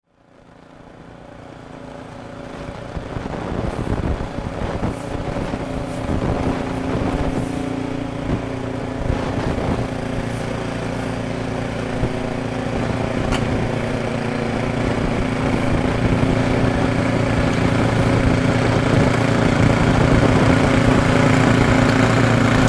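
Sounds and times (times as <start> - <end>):
snowplough: 0.0 - 22.6.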